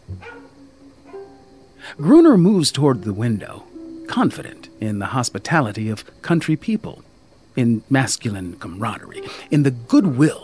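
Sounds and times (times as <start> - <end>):
skinny dog barking at a train station: 0.2 - 1.2
speech: 1.9 - 7.0, 7.6 - 10.4.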